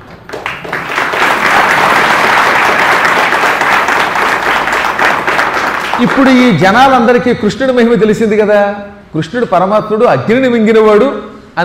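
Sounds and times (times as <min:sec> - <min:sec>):
loud joyful applause from a crowd of people: 0:00.3 - 0:06.6
speech: 0:06.0 - 0:11.6.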